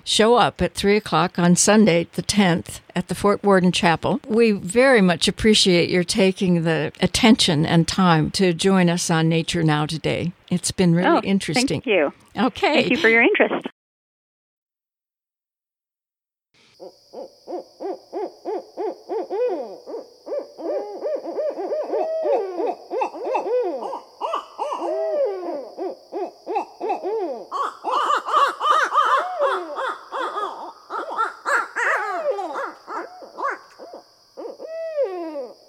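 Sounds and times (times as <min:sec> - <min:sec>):
speech: 0:00.0 - 0:13.7
barred owls hooting and cackling: 0:16.8 - 0:35.6.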